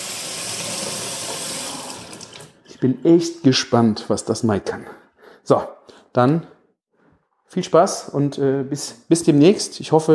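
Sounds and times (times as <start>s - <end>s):
water running from a tap: 0.0s - 2.6s
speech: 2.8s - 6.5s, 7.5s - 10.1s.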